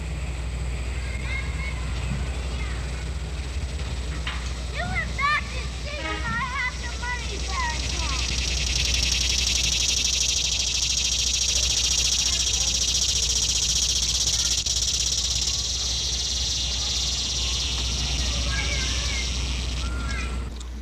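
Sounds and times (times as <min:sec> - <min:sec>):
low rumbling hum: 0:00.0 - 0:20.8
cicada shrilling: 0:00.8 - 0:20.5
bird chirps: 0:04.7 - 0:20.5.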